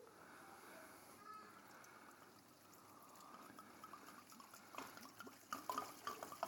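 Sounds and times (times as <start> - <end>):
wine pouring into a sink bucket: 1.5 - 6.4.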